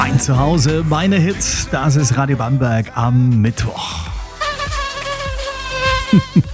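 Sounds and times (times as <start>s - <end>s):
speech: 0.1s - 4.1s
thin high-pitched mosquito whine: 4.3s - 6.5s.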